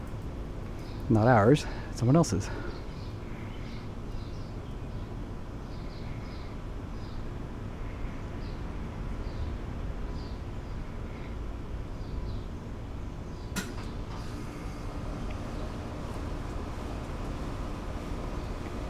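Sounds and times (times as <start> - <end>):
birds chirping: 0.0 - 18.8
outdoor air conditioner motor running: 0.0 - 18.8
speech: 1.1 - 2.8
sharp click: 13.5 - 14.0.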